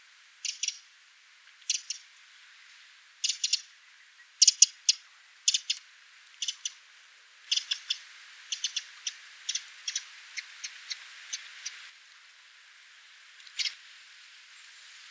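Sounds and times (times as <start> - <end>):
Eurasian wren Troglodytes troglodytes ticking calls: 0.4 - 0.9, 1.6 - 2.1, 3.2 - 3.8, 4.4 - 6.8, 7.5 - 11.9.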